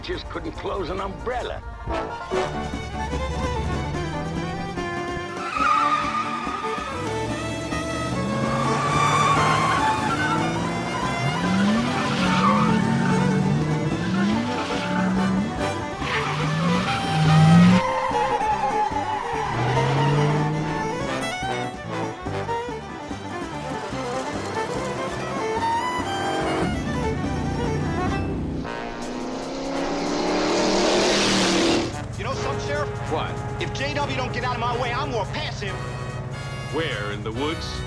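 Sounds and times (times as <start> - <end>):
speech: 0.0 - 3.5, 36.7 - 37.8
police car engines revving in a chase: 1.7 - 37.8
police car tires skidding and squealing in a chase: 2.2 - 32.2.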